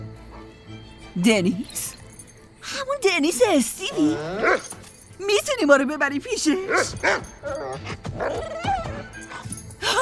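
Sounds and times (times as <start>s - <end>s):
speech: 1.2s - 2.0s, 3.0s - 8.7s
dog barking and yipping excitedly: 3.8s - 4.8s, 6.6s - 9.5s.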